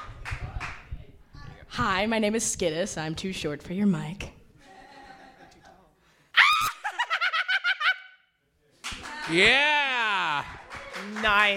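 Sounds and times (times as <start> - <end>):
speech: 1.8 - 4.4, 9.3 - 9.8, 11.2 - 11.5
woman screaming shrilly and cackling: 6.4 - 8.2.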